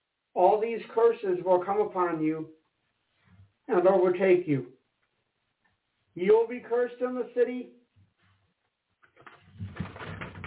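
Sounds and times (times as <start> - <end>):
speech: 0.4 - 2.6, 3.7 - 4.8, 6.2 - 7.8
book page turning with a papery swish: 9.0 - 10.4.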